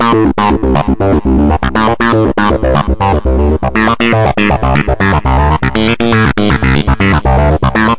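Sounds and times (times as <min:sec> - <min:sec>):
120 BPM acid synth line: 0:00.0 - 0:07.9.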